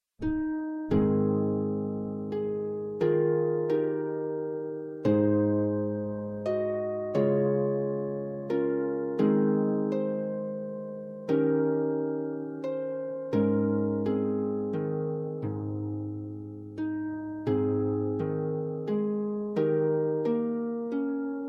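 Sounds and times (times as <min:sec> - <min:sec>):
harp: 0:00.2 - 0:21.4.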